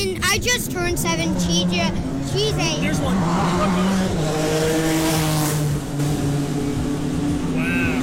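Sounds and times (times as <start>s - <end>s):
speech: 0.0s - 5.0s
race car engine roaring along the track: 0.0s - 8.0s.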